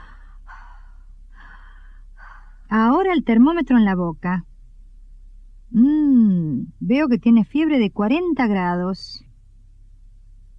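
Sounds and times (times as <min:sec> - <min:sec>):
deep breaths during a stethoscope examination of a patient with a cough: 0:00.0 - 0:02.7
speech: 0:03.1 - 0:04.5, 0:05.7 - 0:09.3.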